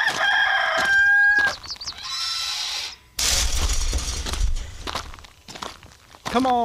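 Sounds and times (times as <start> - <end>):
rooster crowing cock-a-doodle-doo: 0.0 - 1.6
clattering rumbling noise: 3.2 - 5.3
speech: 6.3 - 6.6.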